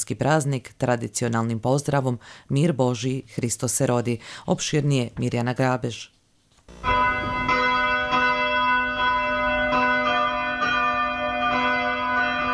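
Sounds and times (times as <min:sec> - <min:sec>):
speech: 0:00.0 - 0:07.4
church bells ringing: 0:06.8 - 0:12.5.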